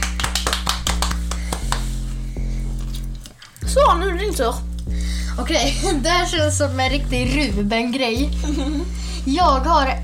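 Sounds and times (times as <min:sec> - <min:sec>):
one or two people clapping hands: 0:00.0 - 0:02.2
steady low hum: 0:00.0 - 0:10.0
speech: 0:03.7 - 0:04.7, 0:05.4 - 0:10.0
laughter: 0:08.4 - 0:08.9.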